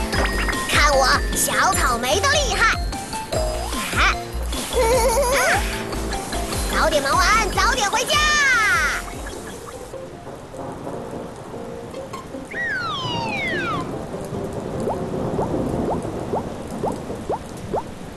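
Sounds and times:
steady rain pouring: 0:00.0 - 0:18.1
speech: 0:01.0 - 0:02.8, 0:06.9 - 0:08.4
swooping whistle-like tone: 0:12.5 - 0:13.9.

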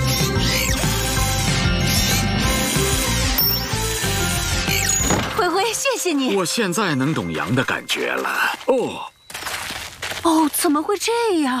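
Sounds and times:
power screwdriver motor whining while removing a door: 0:00.0 - 0:05.2
speech: 0:06.0 - 0:09.1, 0:10.2 - 0:11.5.

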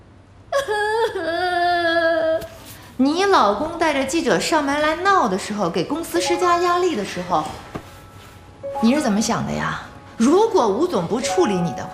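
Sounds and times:
woman crying during a workplace argument: 0:00.5 - 0:02.6
speech: 0:03.0 - 0:07.7, 0:08.8 - 0:11.9.

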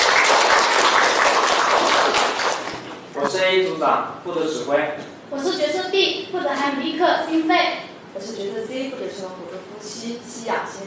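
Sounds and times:
room full of people applauding in a classroom: 0:00.0 - 0:03.1
speech: 0:03.4 - 0:10.8.

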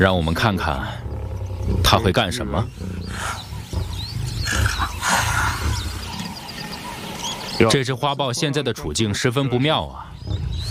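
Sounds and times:
speech: 0:00.0 - 0:01.0, 0:01.8 - 0:03.4, 0:07.6 - 0:10.5
lions roaring and growling around a leopard chased up a tree: 0:00.0 - 0:07.8, 0:09.9 - 0:10.6.

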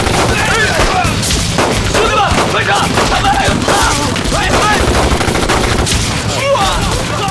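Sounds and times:
volley of rifle shots fired together on command: 0:00.0 - 0:06.3.

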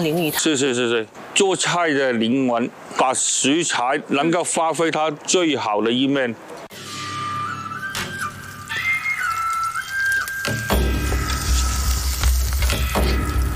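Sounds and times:
speech: 0:00.0 - 0:06.7
thin whistling tone: 0:07.0 - 0:10.7
mud carp sizzling in hot oil in a pan: 0:07.0 - 0:13.5.

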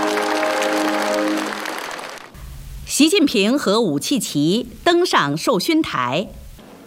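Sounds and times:
guests applauding at an official state honours ceremony: 0:00.0 - 0:02.4
speech: 0:03.0 - 0:06.4.

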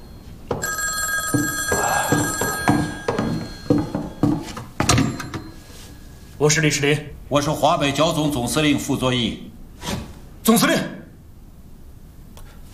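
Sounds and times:
telephone bell ringing: 0:00.0 - 0:06.4
people talking: 0:06.4 - 0:09.5, 0:10.4 - 0:11.1.

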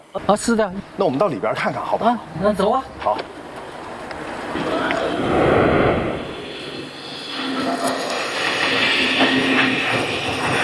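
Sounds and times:
speech: 0:00.2 - 0:03.4
train rumbling past through railway station: 0:02.2 - 0:10.6.

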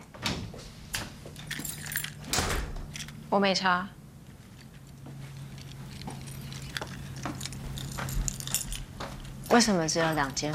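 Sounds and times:
room keys jangling and clinking as they are handed over: 0:01.3 - 0:03.2, 0:04.3 - 0:10.5
speech: 0:03.3 - 0:04.0, 0:09.6 - 0:10.5.

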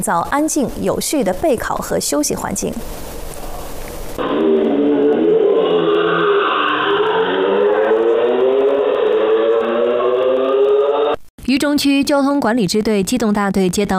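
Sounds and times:
speech: 0:00.0 - 0:03.1, 0:11.5 - 0:13.9
motorcycle engine revving loudly: 0:04.2 - 0:11.2.

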